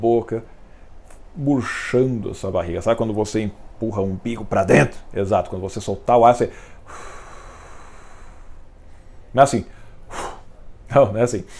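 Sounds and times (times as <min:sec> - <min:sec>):
speech: 0:00.0 - 0:00.6, 0:01.4 - 0:07.1, 0:09.3 - 0:10.2, 0:10.9 - 0:11.5
forceful noisy breath drawn in and pushed out: 0:06.5 - 0:10.6.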